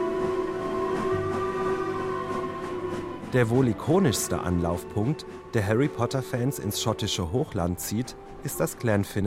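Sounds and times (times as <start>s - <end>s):
train rumbling with tonal droning and whine: 0.0s - 9.2s
speech: 3.3s - 9.2s.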